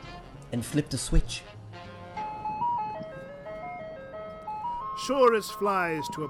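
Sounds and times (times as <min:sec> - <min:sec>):
speech: 0:00.5 - 0:01.6, 0:05.1 - 0:06.2
tinkling ice cream truck jingle of sustained electronic notes: 0:02.2 - 0:06.2.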